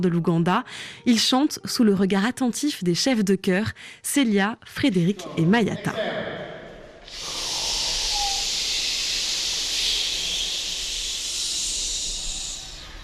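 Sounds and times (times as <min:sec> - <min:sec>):
speech: 0:00.0 - 0:06.3
choir exhaling in a sustained hiss during breathing exercises: 0:07.0 - 0:13.0.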